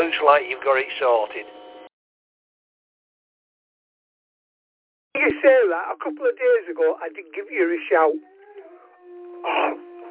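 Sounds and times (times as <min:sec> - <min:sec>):
speech: 0:00.0 - 0:01.6, 0:05.2 - 0:08.3, 0:09.4 - 0:09.8
dog howling and whining: 0:08.1 - 0:10.0.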